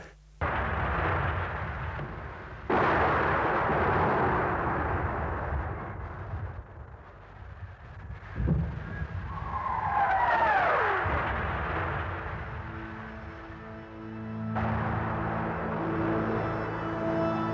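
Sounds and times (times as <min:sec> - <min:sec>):
heavy booms of night-time shelling: 0:00.0 - 0:13.6
constant low rumble: 0:00.0 - 0:17.4.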